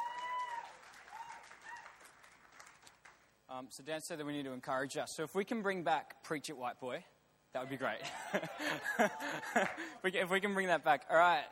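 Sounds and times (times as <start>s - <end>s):
audience applause for a young speaker: 0.0s - 3.2s
speech: 3.5s - 11.5s
laughter: 8.0s - 10.0s.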